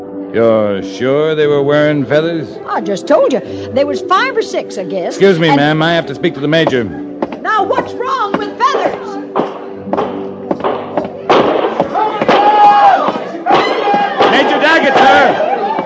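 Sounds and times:
speech: 0:00.3 - 0:09.1
crowd noise: 0:05.3 - 0:15.8
gunshots during an attack on a frontier stockade: 0:09.3 - 0:15.8
people shouting: 0:11.0 - 0:15.8.

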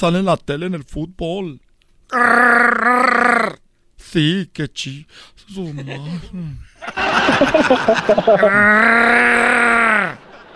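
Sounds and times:
speech: 0:00.0 - 0:10.2
gravelly vocal growl like an engine cranking: 0:02.1 - 0:03.6, 0:08.5 - 0:10.2
laughter: 0:06.8 - 0:10.5.

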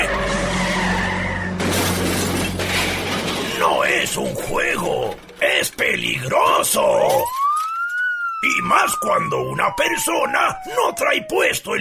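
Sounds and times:
car tires screeching in a long skid: 0:00.0 - 0:05.6
car crashing into something on a street: 0:00.0 - 0:06.2
debris falling: 0:01.6 - 0:08.0
glass shattering: 0:01.6 - 0:08.1
speech: 0:04.1 - 0:07.4, 0:08.4 - 0:11.7.

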